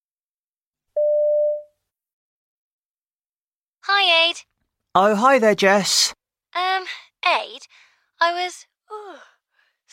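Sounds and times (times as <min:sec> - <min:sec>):
steady electronic mobile phone tone: 0:01.0 - 0:01.7
speech: 0:04.0 - 0:09.2.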